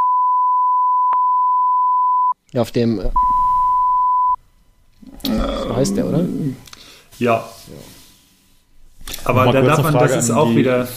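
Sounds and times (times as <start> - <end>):
censorship bleep tone: 0.0 - 2.4, 3.2 - 4.4
speech: 2.5 - 3.2, 5.4 - 8.0, 9.2 - 10.9.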